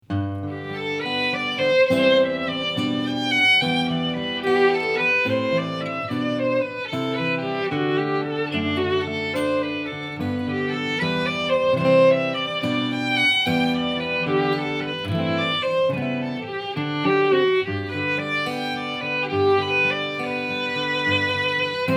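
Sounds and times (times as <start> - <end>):
guitar: 0.0 - 21.9
violin: 0.3 - 21.9.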